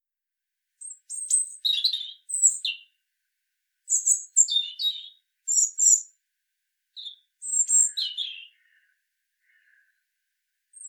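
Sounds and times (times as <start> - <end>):
European robin Erithacus rubecula singing: 0.8 - 3.0, 3.9 - 6.2, 7.0 - 10.0.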